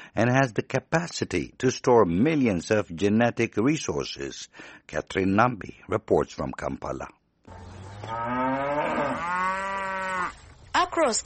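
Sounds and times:
speech: 0.2 - 7.2, 11.0 - 11.2
Ankole long-horned cattle mooing: 7.5 - 10.4.

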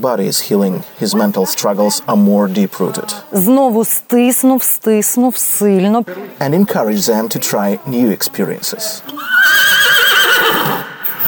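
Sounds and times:
speech: 0.0 - 11.2
horse neighing: 9.1 - 11.2.

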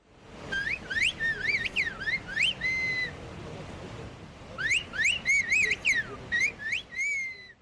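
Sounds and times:
light outdoor background: 0.0 - 7.6
loud whistled language in gliding speech-like phrases: 0.5 - 3.2, 4.6 - 7.6.

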